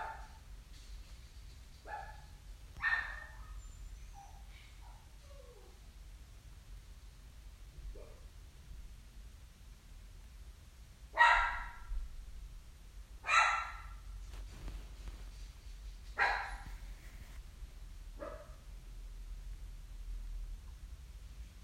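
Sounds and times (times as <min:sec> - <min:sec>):
dog barking: 0:00.0 - 0:00.4, 0:01.8 - 0:03.6, 0:11.2 - 0:11.9, 0:13.2 - 0:14.0, 0:16.2 - 0:16.7, 0:18.2 - 0:18.6
low steady hum: 0:00.0 - 0:21.6.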